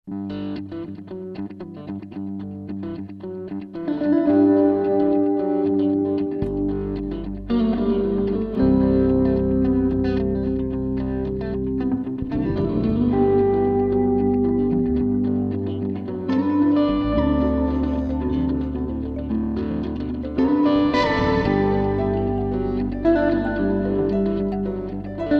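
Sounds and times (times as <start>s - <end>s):
guitar montage: 0.1s - 25.3s.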